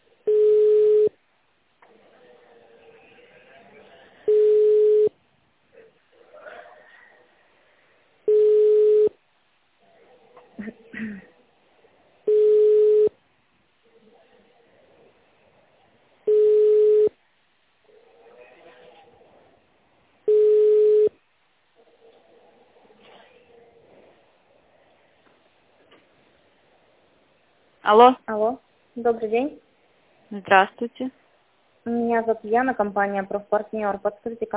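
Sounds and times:
telephone ringback tone while a call is forwarded: 0.3s - 1.1s, 4.3s - 5.1s, 8.3s - 9.2s, 12.3s - 13.2s, 16.3s - 17.2s, 20.3s - 21.2s
speech: 27.9s - 29.6s, 30.3s - 31.2s, 31.9s - 34.5s.

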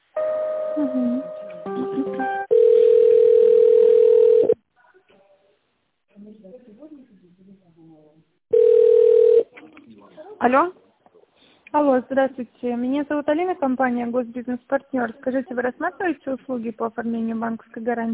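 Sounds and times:
speech: 0.8s - 2.5s, 10.0s - 10.8s, 11.7s - 18.1s
telephone ringing tone on an office line while a call is connected: 2.3s - 4.6s, 8.5s - 9.4s.

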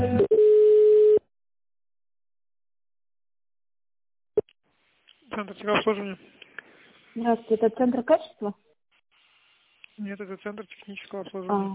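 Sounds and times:
steady electronic telephone tone: 0.2s - 1.3s
speech: 5.5s - 6.4s, 7.1s - 8.7s, 10.0s - 11.7s.

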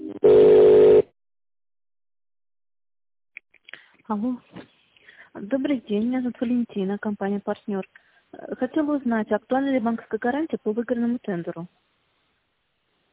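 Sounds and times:
telephone line tones while a call is connected to another extension: 0.1s - 1.1s
speech: 4.2s - 4.6s, 5.7s - 11.9s.

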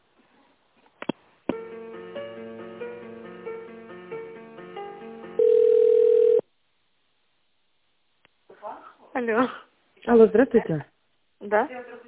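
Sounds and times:
loud steady unbroken telephone tone: 5.4s - 6.5s
speech: 9.2s - 12.0s.

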